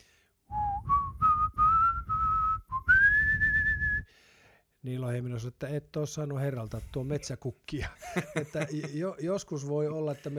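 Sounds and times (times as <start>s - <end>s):
person whistling a tune: 0.5s - 4.1s
speech: 4.9s - 10.3s
laughter: 7.8s - 9.2s.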